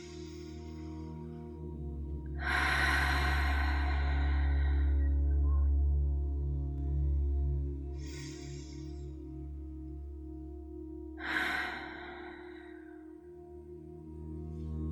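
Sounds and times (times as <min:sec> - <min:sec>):
deep breathing in and out during a guided relaxation exercise: 0:00.0 - 0:05.4, 0:07.8 - 0:14.1
soft low musical drone: 0:00.0 - 0:14.9.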